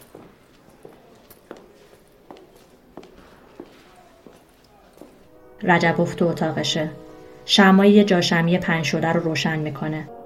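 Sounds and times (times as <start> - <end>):
footsteps of two people climbing stairs: 0.0 - 5.3
low noise: 0.0 - 7.0
speech: 5.6 - 10.2.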